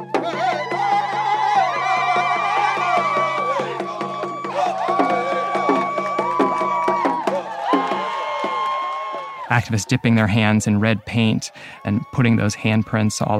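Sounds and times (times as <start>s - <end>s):
steady rhythmic drumming: 0.0s - 8.9s
high sustained voices and whoops: 0.0s - 13.3s
outdoor protest crowd cheering and singing: 0.0s - 13.3s
speech: 9.6s - 13.3s.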